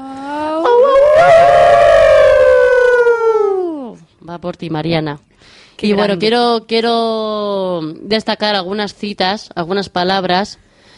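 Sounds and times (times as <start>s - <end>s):
several people imitating a wolf's howl: 0.0s - 4.0s
speech: 4.4s - 10.7s.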